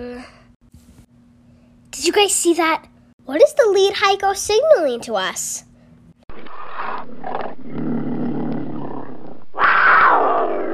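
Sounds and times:
speech: 0:02.0 - 0:05.7
mountain lion roaring with a rumbling growl and harsh snarl: 0:06.3 - 0:10.7.

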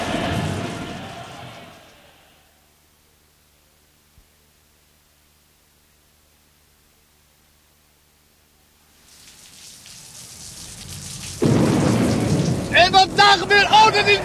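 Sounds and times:
thunder rumbling from a nearby lightning strike: 0:00.0 - 0:01.8, 0:09.9 - 0:14.2
sharp thunder crack from a nearby lightning strike: 0:11.3 - 0:14.2
speech: 0:13.3 - 0:14.2.

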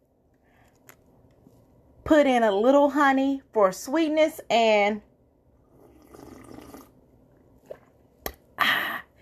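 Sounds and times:
speech: 0:02.1 - 0:05.1
hot water splashing into a tea cup: 0:05.6 - 0:07.0.

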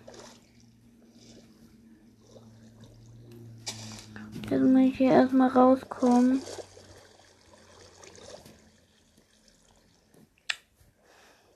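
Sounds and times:
steady low drone of video game underwater ambience: 0:00.0 - 0:06.4
soft watery swishes: 0:00.0 - 0:10.4
bubbling: 0:00.0 - 0:10.8
speech: 0:04.5 - 0:06.6.

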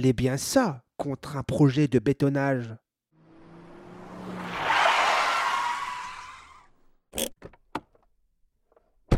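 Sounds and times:
speech: 0:00.0 - 0:02.8, 0:07.1 - 0:07.6
car skidding with tires squealing along the Bourge river in Ardèche: 0:03.6 - 0:06.8.

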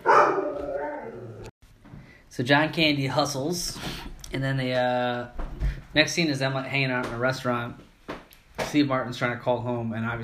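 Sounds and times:
dog barking: 0:00.0 - 0:01.1
speech: 0:02.3 - 0:05.4, 0:06.0 - 0:07.9, 0:08.7 - 0:10.2.

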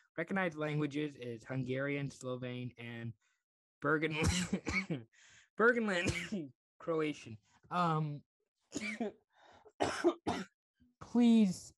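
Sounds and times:
speech: 0:00.2 - 0:09.2, 0:09.8 - 0:11.7
person coughing: 0:04.2 - 0:05.0, 0:06.0 - 0:06.5, 0:08.8 - 0:09.2, 0:09.8 - 0:10.5.

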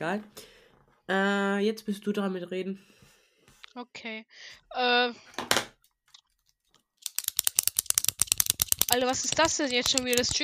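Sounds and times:
speech: 0:00.0 - 0:00.5, 0:01.1 - 0:03.0, 0:03.7 - 0:05.5, 0:08.9 - 0:10.4
pen clicking rapidly: 0:07.0 - 0:10.4.

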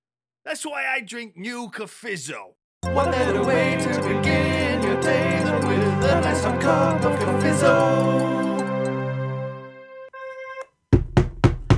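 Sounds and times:
speech: 0:00.4 - 0:08.5
sustained musical chord: 0:02.8 - 0:10.6
firm knocks on a locked door: 0:10.9 - 0:11.7.

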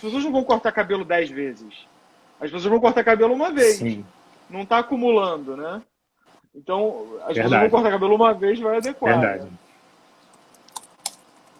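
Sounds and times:
speech: 0:00.0 - 0:05.9, 0:06.6 - 0:09.6
faint steady hiss: 0:00.0 - 0:11.5
soft computer keyboard key clicks typing notes: 0:10.3 - 0:11.5.

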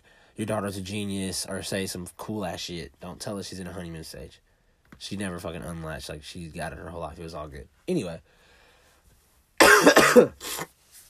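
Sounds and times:
speech: 0:00.4 - 0:08.4, 0:10.1 - 0:10.8
faint trailing breath: 0:08.3 - 0:09.1
harsh raspy coughing fit: 0:09.6 - 0:10.7.

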